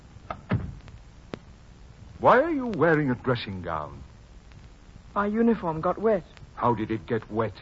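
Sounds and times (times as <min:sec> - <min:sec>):
door pushed shut with a soft low thud: 0:00.4 - 0:00.8
speech: 0:02.2 - 0:04.1, 0:05.2 - 0:07.6.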